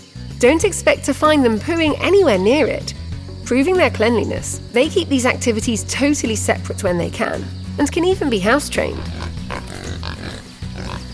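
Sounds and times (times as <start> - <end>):
speech: 0.4 - 9.4
pig grunting and snorting: 8.8 - 11.1.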